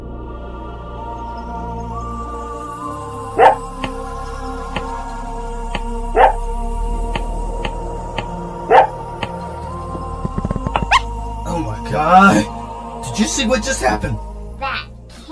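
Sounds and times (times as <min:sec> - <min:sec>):
low hum: 0:00.0 - 0:15.2
dog barking while chasing a ball: 0:03.4 - 0:03.6, 0:06.2 - 0:06.4, 0:08.7 - 0:09.0
speech: 0:13.4 - 0:14.3.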